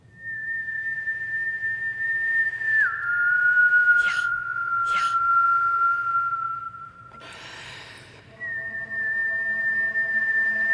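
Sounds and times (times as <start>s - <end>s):
person whistling: 0.0s - 10.7s
breathy gasps: 7.1s - 8.3s.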